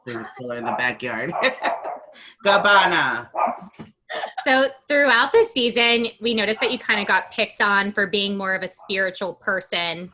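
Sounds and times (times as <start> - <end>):
speech: 0.0 - 3.8, 4.4 - 10.1
person laughing: 0.2 - 2.4
dog barking: 0.4 - 2.2, 3.3 - 3.7.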